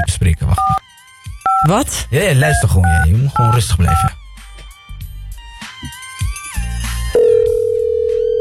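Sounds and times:
speech: 0.0s - 0.8s, 1.6s - 4.2s
telephone ringing tone while a call is placed: 7.2s - 8.3s.

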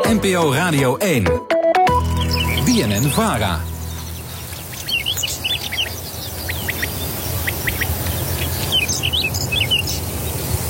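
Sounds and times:
speech: 0.1s - 1.5s, 2.7s - 3.7s
whinchat singing in a peat bog: 2.0s - 10.4s
quail calling in a peat bog: 2.1s - 10.5s.

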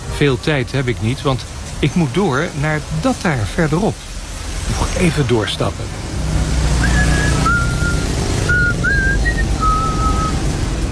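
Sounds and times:
wind and water rushing at an old harbour: 0.0s - 10.9s
speech: 0.2s - 4.1s, 4.7s - 6.0s
whistle short high notes at an old harbour: 6.8s - 10.4s.

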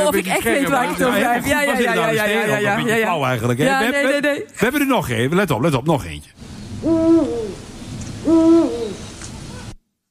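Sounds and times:
speech: 0.1s - 9.0s
male Eurasian eagle-owls hooting a territorial call: 6.8s - 7.6s, 8.2s - 9.8s.

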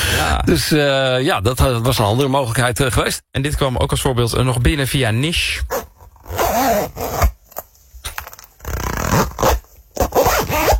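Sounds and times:
speech: 0.3s - 7.0s
zippers being closed: 5.7s - 10.7s.

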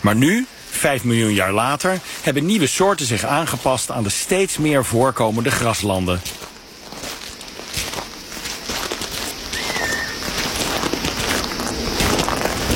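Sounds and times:
speech: 0.0s - 6.5s
footsteps through dry grass on open grassland: 0.0s - 12.7s
faint bird call: 9.5s - 10.4s.

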